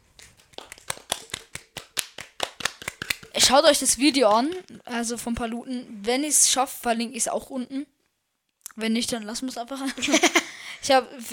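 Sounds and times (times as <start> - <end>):
brisk hand clapping: 0.1 - 3.4
speech: 3.4 - 8.0, 8.8 - 11.3
laughter: 10.0 - 10.5.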